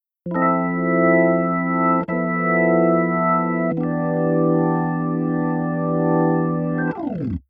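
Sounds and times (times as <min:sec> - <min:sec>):
keyboard organ: 0:00.3 - 0:07.4.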